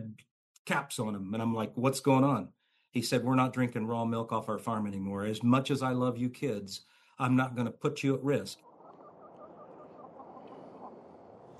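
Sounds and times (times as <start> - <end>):
speech: 0.7 - 8.7
chorus of other poultry: 8.7 - 11.5
rooster clucking in a community garden: 8.8 - 11.1.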